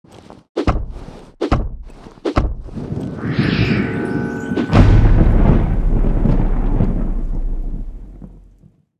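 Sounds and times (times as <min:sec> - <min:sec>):
earthquake rumble: 0:02.6 - 0:08.8.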